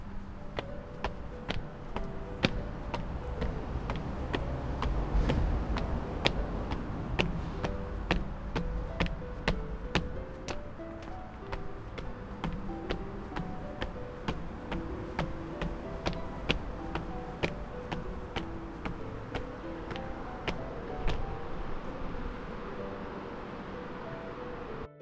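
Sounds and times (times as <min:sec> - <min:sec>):
footsteps on stairs in town: 0:00.0 - 0:24.7
street ambience on stairs: 0:00.0 - 0:24.9.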